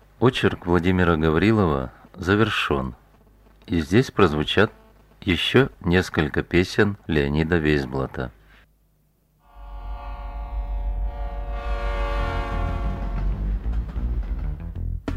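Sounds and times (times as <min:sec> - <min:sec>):
speech: 0:00.2 - 0:03.0, 0:03.7 - 0:08.4
long droning train horn or whistle: 0:09.4 - 0:14.1
train rumbling: 0:09.5 - 0:15.0.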